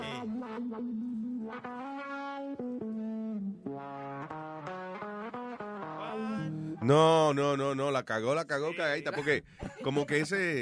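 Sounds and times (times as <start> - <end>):
bachata guitar melody through an effects pedal: 0.0 - 7.3
speech: 0.7 - 1.9, 6.8 - 10.6
laughter: 9.0 - 10.4.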